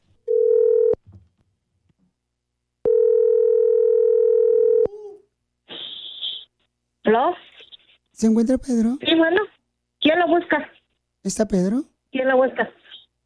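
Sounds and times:
telephone line tones as a call is placed: 0.3s - 1.0s, 2.9s - 4.9s
speech: 8.2s - 12.8s.

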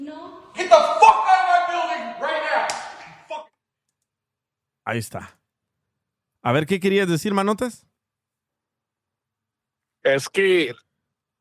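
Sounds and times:
agitated voices talking and exclaiming: 0.5s - 3.5s
sharp loud slap across the face: 2.7s - 3.0s
speech: 4.9s - 5.4s, 6.4s - 7.9s, 10.0s - 10.8s.

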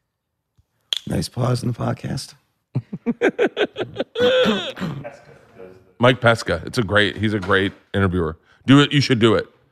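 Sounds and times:
speech: 1.1s - 2.4s, 3.1s - 9.6s
laughter: 2.8s - 5.8s
throat clearing: 4.2s - 5.4s.

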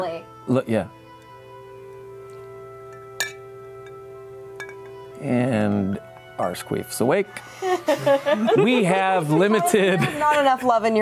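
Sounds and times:
speech: 0.1s - 1.0s, 5.2s - 10.9s
glasses clinking in a toast: 1.2s - 6.0s
laughter: 7.4s - 10.7s.

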